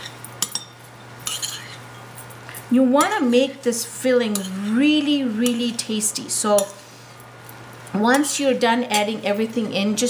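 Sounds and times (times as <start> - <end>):
spoon clinking against a bowl while stirring ginger garlic chutney filling: 0.0 - 2.3, 4.3 - 4.6
speech: 2.7 - 6.8, 7.9 - 10.0.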